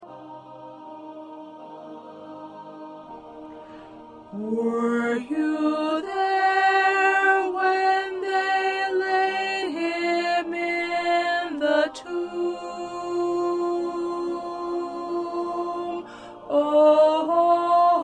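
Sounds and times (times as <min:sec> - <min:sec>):
soprano voice: 0:04.3 - 0:18.0.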